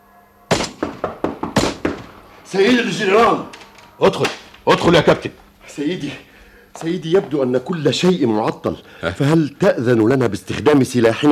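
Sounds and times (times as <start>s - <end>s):
distant muffled artillery fire: 0.5s - 2.3s
speech: 2.5s - 11.3s.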